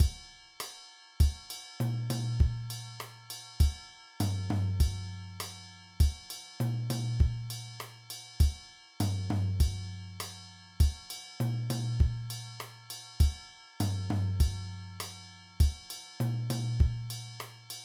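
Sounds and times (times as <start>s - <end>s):
mambo drum beat: 0.0s - 0.2s, 2.1s - 2.8s, 3.6s - 6.2s, 6.9s - 7.5s, 8.4s - 12.5s, 13.2s - 17.2s.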